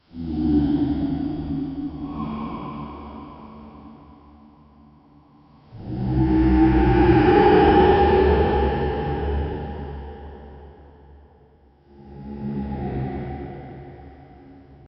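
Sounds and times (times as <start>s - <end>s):
dark horror demon sound: 0.0s - 14.9s.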